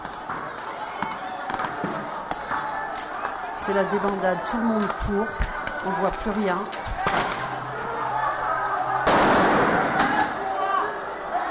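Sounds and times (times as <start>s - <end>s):
crowd noise and voices at a street protest: 0.0s - 11.4s
speech: 3.7s - 7.4s
sting-ball dispersion grenade exploding at a street protest: 9.0s - 10.2s.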